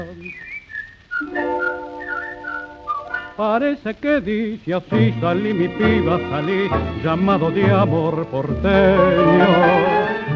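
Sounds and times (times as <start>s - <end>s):
speech: 0.0s - 0.5s, 3.4s - 9.9s
person whistling a short melodic call signal: 0.2s - 3.4s.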